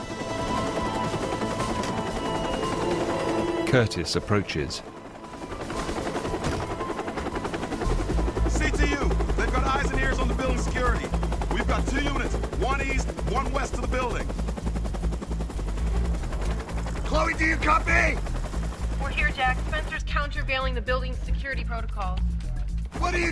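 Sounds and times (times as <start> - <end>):
helicopter landing with rotor thrum and engine whine: 0.0 - 23.3
speech: 3.7 - 4.9, 12.8 - 14.4, 17.4 - 18.3, 19.4 - 22.3, 23.0 - 23.3.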